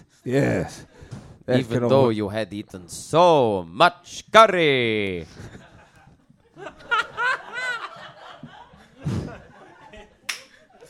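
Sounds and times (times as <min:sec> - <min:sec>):
speech: 0:00.2 - 0:05.6
laughter and snickering: 0:05.2 - 0:10.8
hand slapping against thighs: 0:10.3 - 0:10.6.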